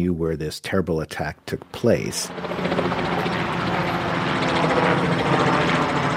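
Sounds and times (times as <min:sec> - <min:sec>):
speech: 0:00.0 - 0:03.0
helicopters flying overhead: 0:01.7 - 0:06.1.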